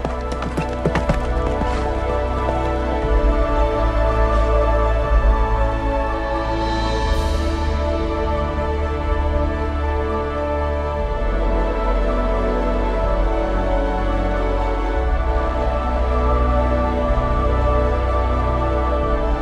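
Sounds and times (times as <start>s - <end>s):
horse hooves clip-clopping: 0.0s - 4.0s
steady music: 0.0s - 19.3s.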